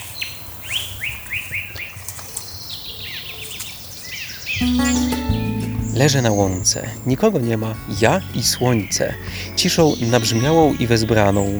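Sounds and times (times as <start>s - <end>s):
several birds chirping and singing in downward-sweeping notes: 0.0s - 11.5s
speech: 4.6s - 5.2s, 6.0s - 11.5s
low steady hum: 4.6s - 8.5s.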